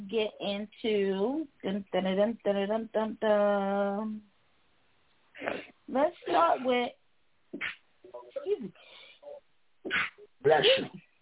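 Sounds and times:
speech: 0:00.1 - 0:04.3, 0:05.4 - 0:08.9, 0:09.8 - 0:11.0
person sneezing: 0:05.4 - 0:05.7, 0:07.6 - 0:07.8, 0:09.9 - 0:11.0.

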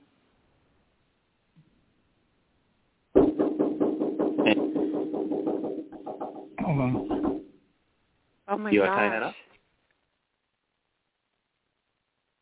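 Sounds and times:
heavy pounding on a door: 0:03.2 - 0:07.5
speech: 0:06.8 - 0:07.1, 0:08.6 - 0:09.4.

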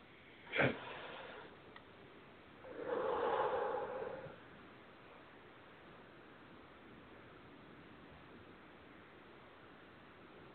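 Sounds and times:
deep breath during a guided relaxation: 0:00.4 - 0:01.6, 0:02.6 - 0:04.5.

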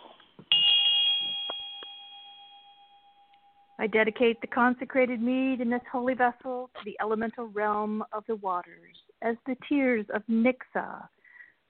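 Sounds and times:
faint clinks of the bell settling: 0:00.0 - 0:04.3
bright ritual bell struck at an altar during a ceremony: 0:00.0 - 0:05.6
speech: 0:03.8 - 0:11.6.

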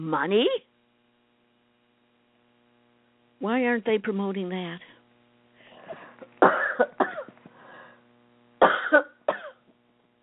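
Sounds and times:
speech: 0:00.0 - 0:00.7, 0:03.4 - 0:04.9
person coughing from a tickle in the throat after a workout: 0:05.8 - 0:07.3, 0:08.6 - 0:09.6.

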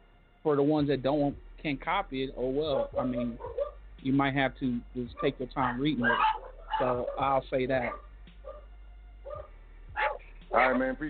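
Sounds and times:
steady low hum: 0:00.0 - 0:11.0
speech: 0:00.4 - 0:08.0, 0:10.5 - 0:11.0
dog giving high yipping barks: 0:02.7 - 0:03.8, 0:05.2 - 0:08.7, 0:09.3 - 0:10.8.

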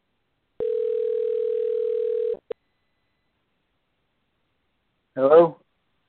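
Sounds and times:
telephone ringing tone while dialing out a call: 0:00.6 - 0:02.6.

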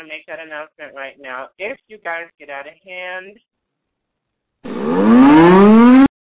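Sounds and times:
speech: 0:00.0 - 0:03.5
siren sound effect played as a warning: 0:04.6 - 0:06.1.

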